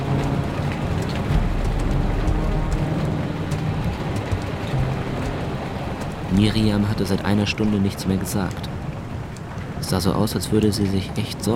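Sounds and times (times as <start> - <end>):
continuous low storm rumble: 0.0 - 7.4
sleet and hail drumming against a window in a storm: 0.0 - 11.5
speech: 6.4 - 8.8, 9.9 - 11.5.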